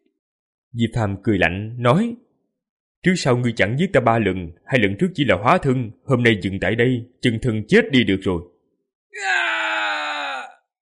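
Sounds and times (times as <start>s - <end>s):
speech: 0.7s - 2.2s, 3.0s - 8.5s, 9.1s - 9.5s
man shouting: 9.2s - 10.7s.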